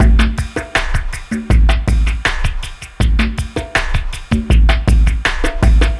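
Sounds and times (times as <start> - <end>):
ambient drum sample: 0.0 - 5.9.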